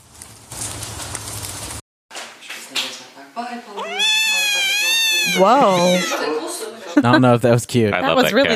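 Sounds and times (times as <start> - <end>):
speech: 3.4 - 3.8, 5.3 - 8.5
cat meowing: 3.8 - 6.4
laughter: 5.2 - 8.5.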